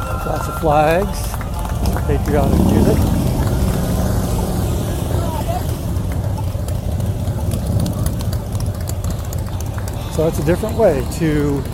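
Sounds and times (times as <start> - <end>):
faint indistinct voices: 0.0 - 11.7
motorcycles passing in a group in a parade: 0.0 - 11.7
speech: 0.3 - 1.4, 2.0 - 3.2, 10.2 - 11.7.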